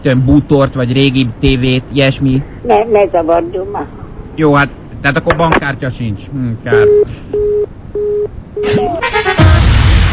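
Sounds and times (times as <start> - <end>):
speech: 0.0 - 9.8
telephone busy signal beeps after hang-up: 6.7 - 9.0.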